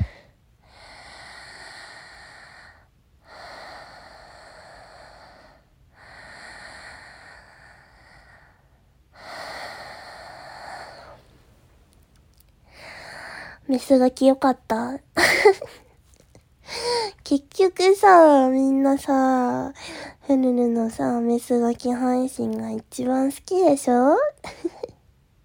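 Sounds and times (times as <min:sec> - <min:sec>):
deep slow breathing: 0:00.0 - 0:11.6
speech: 0:13.7 - 0:15.8, 0:17.3 - 0:24.6.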